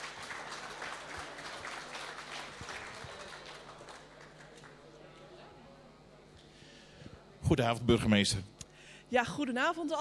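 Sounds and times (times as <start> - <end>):
crowd applauding: 0.0 - 5.0
speech: 7.5 - 9.9.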